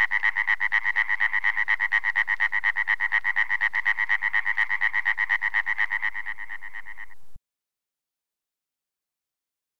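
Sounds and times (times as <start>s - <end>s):
European tree frog calling in rasping pulses: 0.0s - 7.3s.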